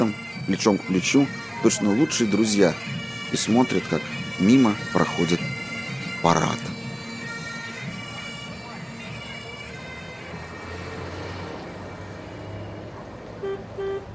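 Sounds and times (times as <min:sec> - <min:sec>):
speech: 0:00.0 - 0:05.5, 0:06.2 - 0:06.7
busy street noise: 0:00.0 - 0:14.1
car horns honking: 0:13.4 - 0:14.1.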